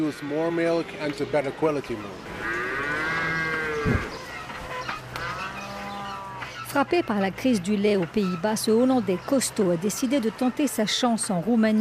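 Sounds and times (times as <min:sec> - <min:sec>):
speech: 0:00.0 - 0:02.6, 0:03.8 - 0:04.2, 0:06.8 - 0:11.7
dairy cows mooing in a barn: 0:00.0 - 0:07.2.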